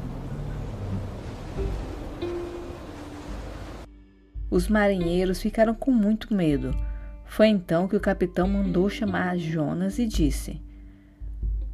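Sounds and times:
crashing waves of a stormy sea: 0.0s - 3.9s
speech: 1.6s - 1.9s, 4.5s - 10.7s.

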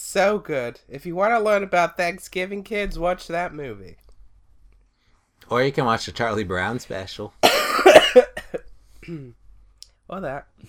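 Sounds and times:
speech: 0.1s - 4.0s, 5.4s - 8.4s, 9.0s - 9.4s, 10.1s - 10.6s
person coughing in a harsh fit: 7.4s - 9.4s.

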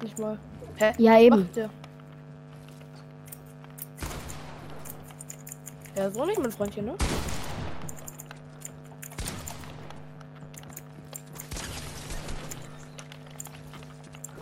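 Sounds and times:
steady electronic hum: 0.0s - 14.4s
speech: 0.1s - 1.8s, 6.0s - 7.4s
rapid video game gunfire: 3.9s - 14.4s.

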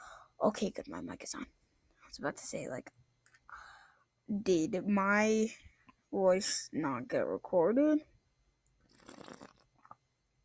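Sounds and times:
speech: 0.4s - 3.0s, 4.3s - 8.1s
sipping water from a glass: 8.9s - 9.7s
person gulping water: 9.0s - 9.6s.

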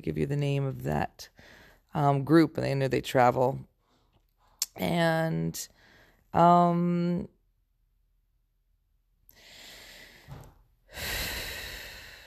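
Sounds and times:
speech: 0.0s - 3.7s, 4.8s - 7.3s
person breathing: 1.3s - 1.9s, 5.7s - 6.3s, 9.3s - 12.2s.

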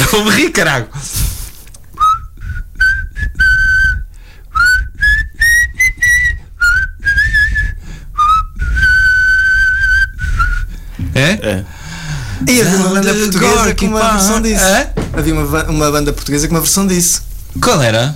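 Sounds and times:
speech: 0.1s - 1.2s, 11.2s - 11.7s, 12.4s - 18.1s
person whistling a slow wistful rock ballad melody: 2.0s - 10.7s.

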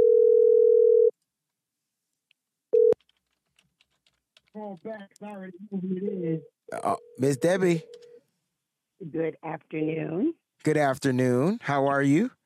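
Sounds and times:
telephone dial tone: 0.0s - 1.1s, 2.8s - 3.0s
person speaking on phone line: 4.6s - 7.9s, 9.0s - 12.3s
speech: 4.6s - 8.0s, 9.0s - 12.4s.

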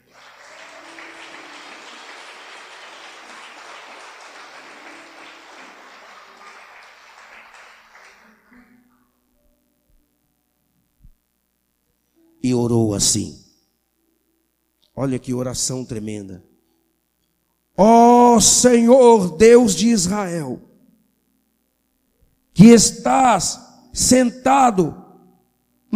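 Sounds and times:
large crowd applauding: 0.0s - 8.7s
speech: 12.6s - 13.4s, 15.0s - 16.5s, 17.8s - 20.7s, 22.6s - 25.0s.

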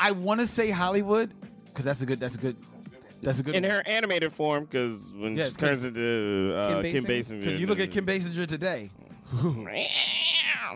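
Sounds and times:
speech: 0.0s - 10.7s
person imitating alley cats fighting with yowling meows: 9.5s - 10.7s.

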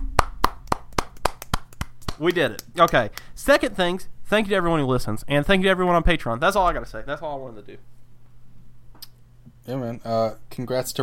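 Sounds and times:
hand clapping: 0.0s - 3.3s
speech: 2.2s - 7.9s, 9.6s - 11.0s.

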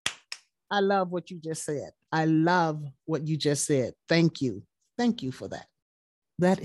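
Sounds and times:
sharp hand claps: 0.0s - 0.5s
speech: 0.7s - 5.7s, 6.4s - 6.6s.

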